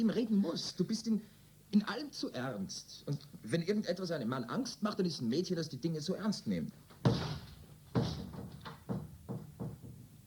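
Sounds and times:
speech: 0.0s - 7.3s
door blown open by the wind banging and knocking: 7.0s - 10.1s.

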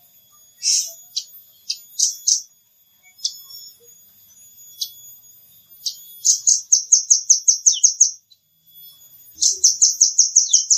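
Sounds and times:
nuthatch giving high piping notes: 0.0s - 10.7s.

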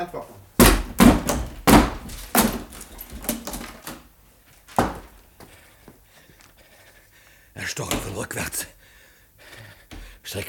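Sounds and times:
speech: 0.0s - 0.5s, 7.6s - 8.8s
weaker knocks on a locked door: 0.6s - 2.7s
heavy blows breaking down a locked door: 0.6s - 4.0s, 4.8s - 5.2s
locked door rattling: 0.6s - 4.0s.

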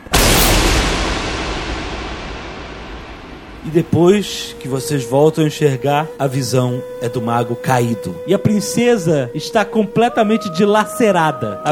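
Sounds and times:
magic spell explosion with roaring rumbling decay sound effect: 0.0s - 4.5s
speech: 3.6s - 11.7s.

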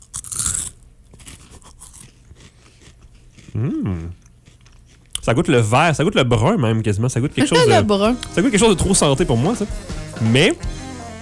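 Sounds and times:
crisp crunch of biting into food during a public tasting: 0.0s - 5.3s
soft chewing of food during a public tasting: 0.1s - 5.8s
speech: 3.6s - 4.2s, 5.3s - 10.8s.

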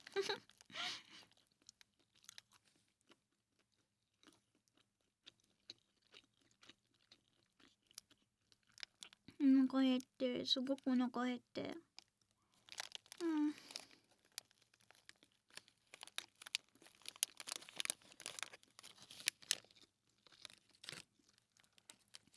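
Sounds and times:
rice ball wrapper crinkling: 0.0s - 0.9s, 12.5s - 22.3s
person eating a chicken gomoku rice ball: 0.0s - 9.4s, 12.0s - 22.3s
speech: 0.2s - 1.0s, 9.4s - 11.9s.

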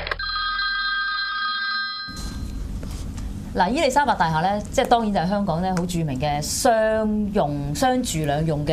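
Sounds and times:
telephone bell ringing for an emergency call: 0.2s - 2.7s
speech: 3.5s - 8.7s.

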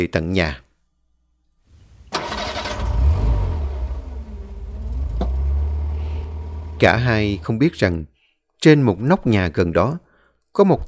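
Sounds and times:
speech: 0.0s - 0.6s, 6.8s - 10.0s, 10.6s - 10.8s
car engine cranking and catching: 1.7s - 7.7s.

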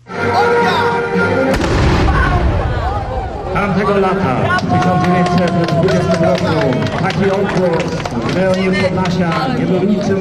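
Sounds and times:
speech: 0.3s - 0.9s, 3.6s - 10.1s
cannon firing at a historical battle reenactment in Białystok: 1.5s - 4.2s
busy voices at a historical battle reenactment: 2.1s - 10.1s.

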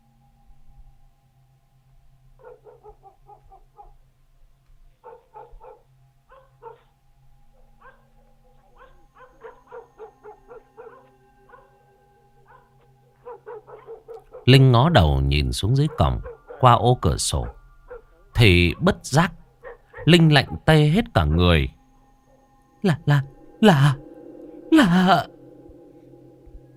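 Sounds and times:
low steady hum: 0.0s - 2.5s, 3.9s - 26.7s
yellow dog barking outside: 2.4s - 4.0s, 5.0s - 6.9s, 7.5s - 11.8s, 12.4s - 14.6s, 15.7s - 16.8s, 17.4s - 19.0s, 19.6s - 21.5s
speech: 14.5s - 17.6s, 18.4s - 19.4s, 20.0s - 21.8s, 22.8s - 24.0s, 24.8s - 25.4s.

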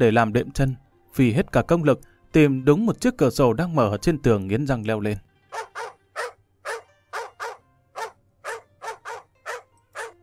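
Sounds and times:
speech: 0.0s - 5.7s
dog barking loudly in a garden: 5.5s - 10.2s.

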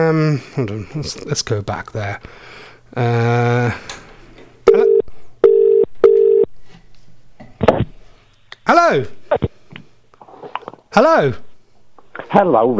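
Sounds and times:
speech: 0.0s - 4.0s, 8.8s - 9.5s, 11.0s - 11.5s, 12.3s - 12.7s
telephone line beeps on a radio phone-in: 4.7s - 6.5s.

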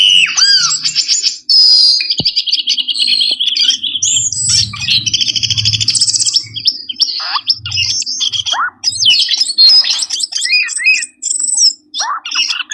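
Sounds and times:
bird lure song with fast high trills chirps and buzzy notes: 0.0s - 12.7s
faint low rumble: 3.0s - 9.7s.

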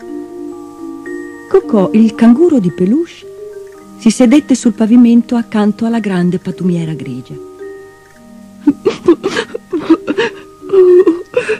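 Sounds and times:
speech: 1.5s - 3.3s, 4.0s - 7.5s, 8.6s - 9.0s
person imitating sobbing with whimpering gasps: 8.6s - 11.5s.

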